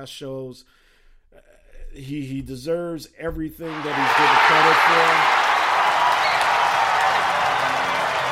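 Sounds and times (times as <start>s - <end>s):
speech: 0.0s - 5.4s
crowd cheering and applause: 3.7s - 8.3s.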